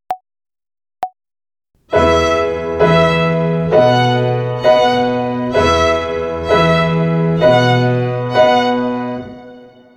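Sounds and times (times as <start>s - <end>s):
violin finger exercise on the E string in triple time: 1.8s - 9.9s.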